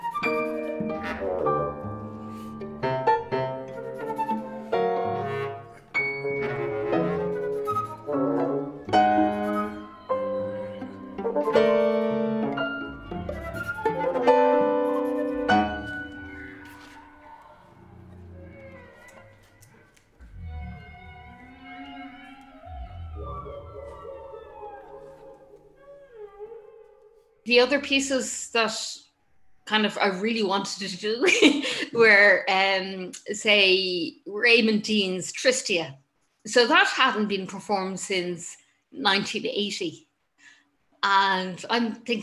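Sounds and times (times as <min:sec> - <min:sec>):
sustained musical texture: 0:00.2 - 0:17.2, 0:20.2 - 0:25.8
whale song played from tape: 0:06.2 - 0:27.4
speech: 0:27.5 - 0:29.0, 0:29.7 - 0:40.1, 0:41.0 - 0:42.2.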